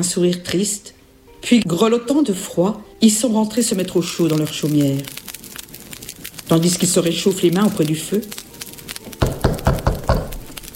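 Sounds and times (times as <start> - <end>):
speech: 0.0 - 5.3, 6.5 - 8.4
firm knocks on a cottage door: 9.2 - 10.3.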